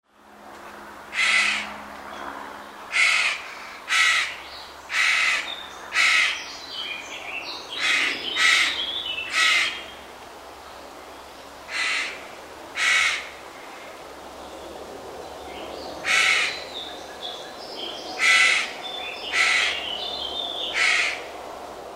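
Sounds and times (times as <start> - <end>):
carrion crow: 1.2 - 1.7, 2.9 - 6.4, 7.7 - 9.8, 11.7 - 12.2, 12.8 - 13.9, 16.0 - 16.6, 18.2 - 19.8, 20.6 - 21.3.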